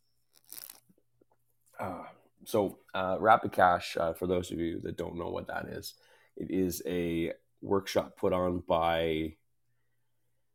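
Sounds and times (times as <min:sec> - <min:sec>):
quick soft slurping sip of coffee: 0:00.3 - 0:00.9
speech: 0:01.8 - 0:09.4.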